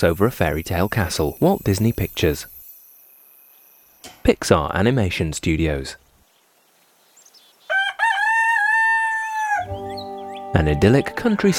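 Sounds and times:
speech: 0:00.0 - 0:02.5, 0:04.2 - 0:06.0, 0:10.5 - 0:11.5
rooster crowing: 0:07.7 - 0:10.0.

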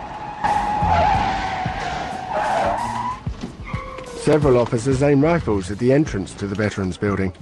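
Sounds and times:
police car tires squealing through a turn: 0:00.0 - 0:04.5
speech: 0:04.3 - 0:07.4.

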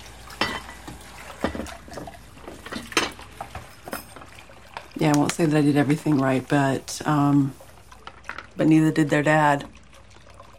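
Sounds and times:
water running from a kitchen tap: 0:00.0 - 0:10.5
plates and pans clinking and knocking: 0:00.3 - 0:04.3
speech: 0:05.0 - 0:07.6, 0:08.6 - 0:09.8.

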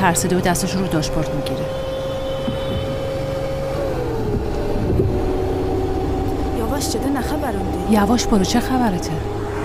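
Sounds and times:
speech: 0:00.0 - 0:01.8, 0:06.8 - 0:09.4
car engine droning while speeding up and overtaking: 0:00.0 - 0:09.6
road rumble: 0:00.0 - 0:09.6.

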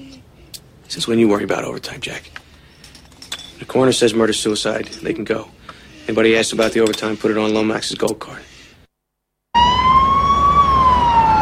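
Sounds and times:
speech: 0:00.9 - 0:02.4, 0:03.6 - 0:08.5
speeding ambulance siren wailing: 0:09.6 - 0:11.4.

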